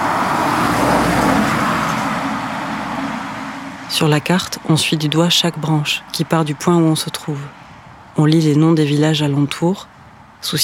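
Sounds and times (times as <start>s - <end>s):
cars speeding past on a busy roadside: 0.0s - 8.2s
speech: 4.0s - 7.6s, 8.2s - 10.6s.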